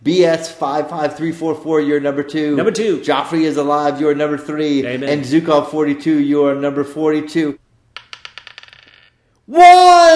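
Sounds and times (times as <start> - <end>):
speech: 0.0 - 7.6, 9.5 - 10.1
dice rattling on a hard surface during a prize draw: 8.0 - 9.2.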